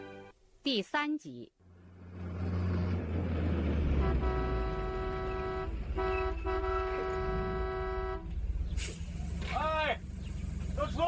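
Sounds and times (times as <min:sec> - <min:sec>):
speech: 0:00.6 - 0:01.6
truck engine rumbling: 0:01.6 - 0:11.0
truck horn honking: 0:03.8 - 0:08.5.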